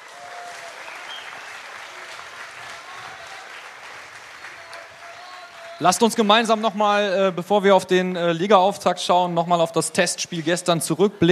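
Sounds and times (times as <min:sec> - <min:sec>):
audience applause: 0:00.0 - 0:07.9
speech: 0:05.8 - 0:11.3.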